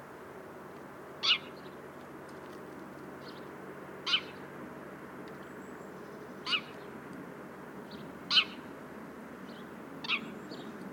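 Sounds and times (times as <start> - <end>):
house sparrow Passer domesticus chirps: 1.2 - 1.8, 3.2 - 4.4, 5.4 - 6.9, 7.9 - 8.6, 9.4 - 10.8.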